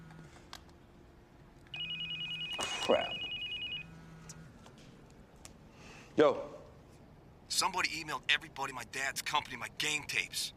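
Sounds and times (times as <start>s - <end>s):
phone ringing with electronic trill: 1.7s - 4.2s
speech: 2.9s - 3.2s, 6.2s - 6.5s, 7.6s - 10.5s.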